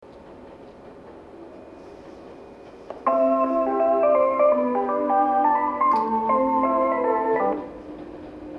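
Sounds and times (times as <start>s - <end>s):
station departure melody at Kitasenju on the Joban line: 3.1s - 7.8s.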